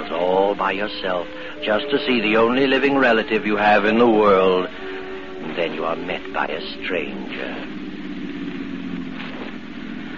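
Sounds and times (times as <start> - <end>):
speech: 0.6 - 4.8, 5.4 - 7.8
car driving slowly up a driveway: 4.3 - 10.1.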